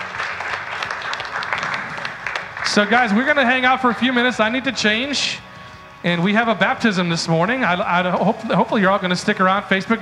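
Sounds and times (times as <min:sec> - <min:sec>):
congregation clapping hands in applause at a church service: 0:00.0 - 0:04.6
speech: 0:02.7 - 0:05.4, 0:06.0 - 0:10.0.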